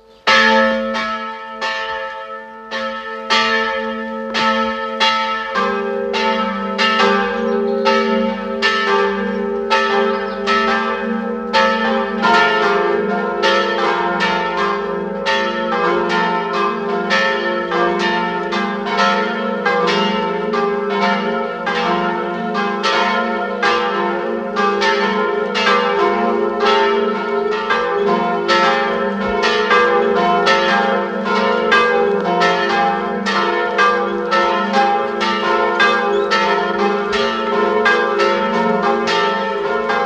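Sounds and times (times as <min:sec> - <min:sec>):
parish church bells ringing at noon: 0:00.0 - 0:40.0.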